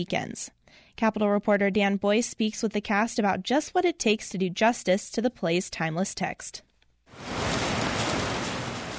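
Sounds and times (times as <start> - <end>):
speech: 0.0 - 7.4
rain and hail pounding down: 7.2 - 8.9.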